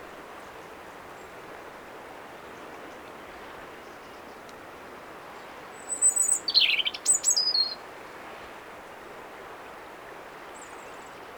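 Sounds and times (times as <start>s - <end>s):
faint background hiss: 0.0s - 11.3s
European robin Erithacus rubecula singing: 5.8s - 7.8s.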